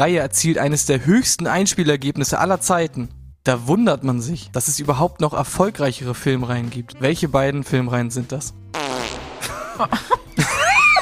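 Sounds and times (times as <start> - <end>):
speech: 0.0 - 8.6, 9.8 - 10.2
cartoonish fart sound effect: 8.7 - 9.9
laughter: 9.4 - 11.0.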